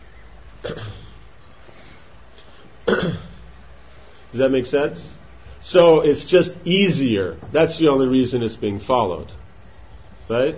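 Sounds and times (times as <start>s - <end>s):
quiet hiss: 0.0s - 10.5s
speech: 0.6s - 1.0s, 4.3s - 9.4s, 10.3s - 10.5s
person coughing: 0.6s - 1.2s, 2.8s - 3.4s.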